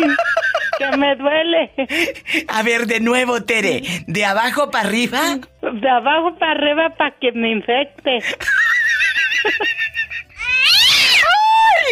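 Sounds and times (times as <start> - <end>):
laughter: 0.0 - 2.2, 8.1 - 10.4
speech: 1.0 - 8.7, 9.4 - 9.8
cat meowing loudly and insistently: 10.4 - 11.6.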